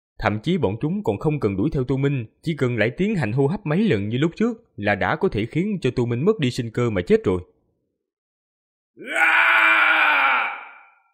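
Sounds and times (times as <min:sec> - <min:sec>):
speech: 0:00.2 - 0:07.5, 0:09.0 - 0:09.4
long howling scream sound effect: 0:09.0 - 0:11.1.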